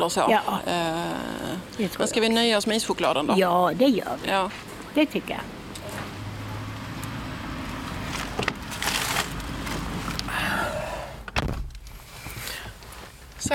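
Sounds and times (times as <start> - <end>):
speech: 0.0 - 5.6
rustling and shuffling movement of people getting into a parked car: 4.2 - 5.0, 7.6 - 10.3, 11.4 - 13.5
car door thuds and slam of a parked car: 11.3 - 11.8.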